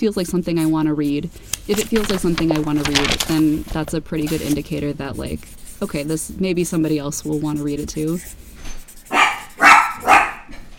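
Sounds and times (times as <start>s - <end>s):
speech: 0.0s - 8.4s
dog barking: 9.1s - 10.5s.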